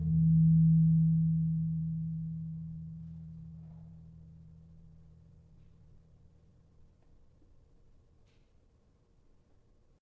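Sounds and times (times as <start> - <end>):
tuned gamelan gong in F: 0.0 - 4.5.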